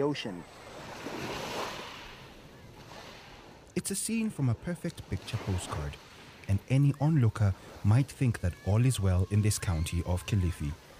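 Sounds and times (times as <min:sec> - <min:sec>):
speech: 0:00.0 - 0:01.4, 0:03.8 - 0:10.8
ocean waves on a tourist beach in Kilifi county: 0:00.0 - 0:10.9.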